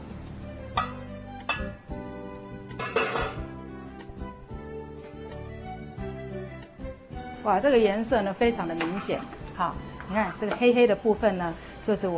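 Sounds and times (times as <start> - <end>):
steamer pot lid clanking as lifted off on a kitchen stove: 0.8 - 1.8, 2.7 - 3.4, 8.6 - 10.7
speech: 7.4 - 12.1.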